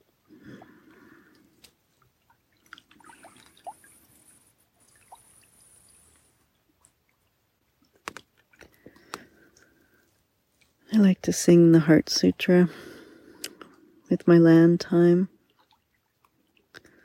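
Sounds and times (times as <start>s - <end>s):
water trickling and flowing: 0.4s - 9.7s, 15.0s - 17.0s
speech: 11.0s - 12.9s, 14.1s - 15.3s.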